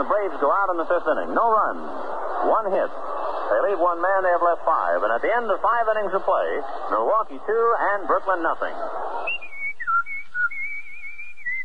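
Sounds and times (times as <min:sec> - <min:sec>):
speech: 0:00.0 - 0:09.0
person whistling a tune: 0:09.3 - 0:11.6.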